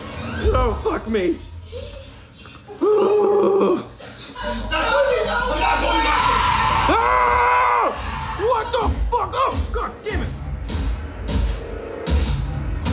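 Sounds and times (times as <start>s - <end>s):
busy noisy background: 0.0s - 12.9s
speech: 0.4s - 2.0s
man screaming and yelling: 6.4s - 10.2s.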